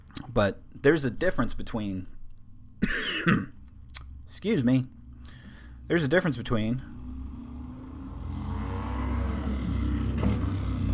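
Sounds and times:
speech: 0.4 - 2.2, 2.8 - 3.6, 4.4 - 5.0, 5.9 - 6.9
many motorcycles driving past a house: 6.8 - 10.9.

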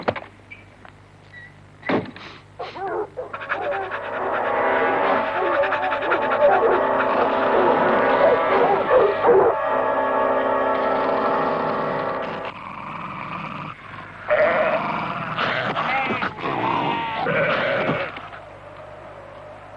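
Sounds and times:
faint mechanical noise: 0.0 - 19.7
dog barking in an old advert: 2.6 - 4.5, 5.3 - 9.6
sheep bleating: 4.1 - 9.2, 14.2 - 18.4.

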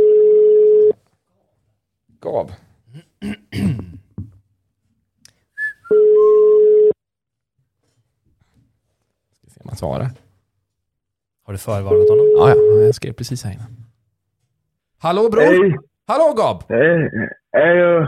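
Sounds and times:
phone ringback tone: 0.0 - 0.9, 5.9 - 7.0, 11.9 - 12.9
speech: 2.4 - 3.8, 9.8 - 10.2, 11.5 - 13.9, 15.0 - 18.0
throat noises: 2.9 - 4.2, 16.7 - 18.0.

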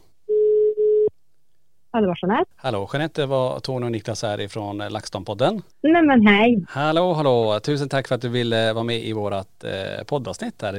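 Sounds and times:
telephone ringing tone while calling a guest: 0.3 - 1.1
speech: 2.0 - 10.7.

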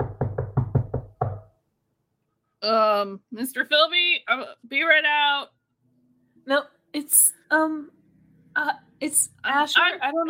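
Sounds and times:
woman knocking firmly on a door: 0.0 - 1.5
speech: 2.6 - 5.6, 6.4 - 8.0, 8.6 - 10.2.

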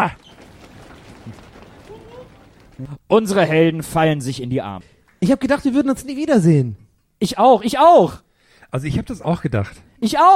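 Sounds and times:
speech: 0.0 - 0.2, 2.8 - 10.3
voices calling out: 0.0 - 3.0
running footsteps on the ground: 0.0 - 3.1.

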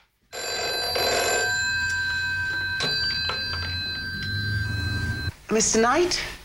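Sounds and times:
telephone ringing with bright metallic bell: 0.3 - 5.3
speech: 5.5 - 6.4.

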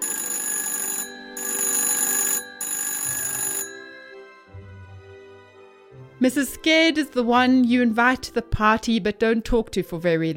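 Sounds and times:
telephone ringing: 0.0 - 4.6
speech: 6.2 - 10.3.

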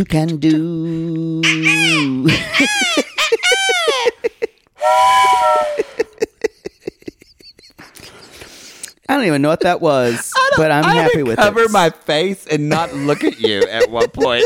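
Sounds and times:
speech: 0.0 - 4.2, 9.2 - 14.4
voice imitating a steam train whistle: 1.4 - 2.2, 4.8 - 6.1
laughter: 1.6 - 4.6, 5.3 - 8.4, 10.0 - 11.9, 12.6 - 14.4.

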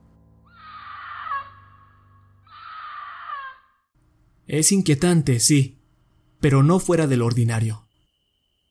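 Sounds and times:
cougar screaming in a dense forest near nightfall: 0.5 - 3.8
speech: 4.5 - 5.8, 6.4 - 7.8.

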